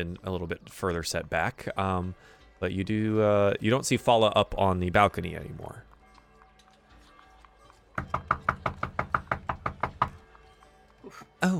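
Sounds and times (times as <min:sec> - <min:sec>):
speech: 0:00.0 - 0:05.9, 0:08.0 - 0:08.4, 0:11.1 - 0:11.5
knuckles knocking hard on a surface: 0:08.0 - 0:10.2.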